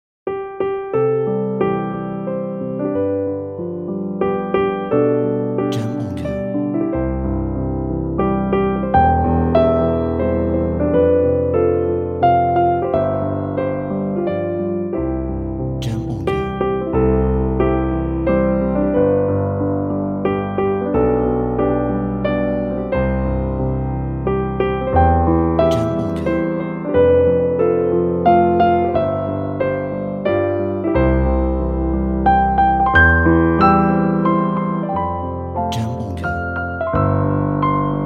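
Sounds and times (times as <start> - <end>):
piano melody: 0.3 - 38.0.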